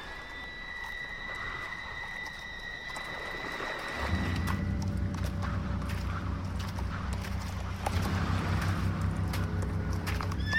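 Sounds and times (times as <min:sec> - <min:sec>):
horses walking with hooves clip-clopping: 0:00.2 - 0:10.5
low droning hum: 0:03.5 - 0:10.4.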